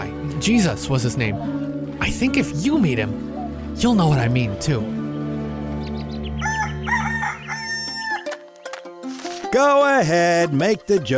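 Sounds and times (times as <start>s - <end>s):
speech: 0.4s - 5.0s, 9.6s - 11.1s
rooster crowing: 6.4s - 8.3s.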